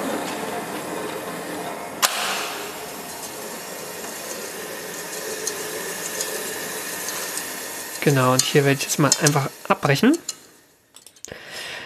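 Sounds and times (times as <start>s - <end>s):
cement mixer churning wet cement: 0.0s - 10.8s
speech: 8.0s - 10.3s.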